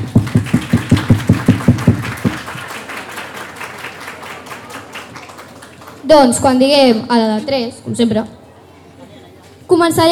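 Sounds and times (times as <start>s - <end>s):
audience clapping hands hard and very fast: 0.0s - 6.1s
speech: 6.1s - 8.4s, 9.7s - 10.1s.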